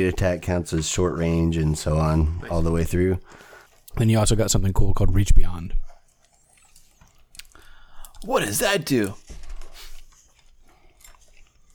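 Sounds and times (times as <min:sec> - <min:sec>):
speech: 0:00.0 - 0:05.8, 0:08.2 - 0:09.3
crunchy chewing of M&M's candies: 0:02.5 - 0:11.7.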